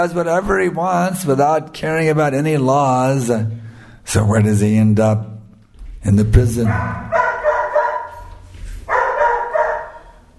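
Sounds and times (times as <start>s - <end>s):
speech: 0.0s - 5.4s, 6.0s - 7.2s
dog barking: 6.6s - 10.3s.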